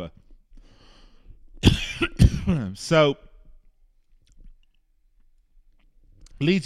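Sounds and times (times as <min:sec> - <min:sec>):
man clearing his throat: 0:01.6 - 0:02.8
man coughing: 0:01.6 - 0:02.8
speech: 0:02.0 - 0:03.3, 0:06.4 - 0:06.6.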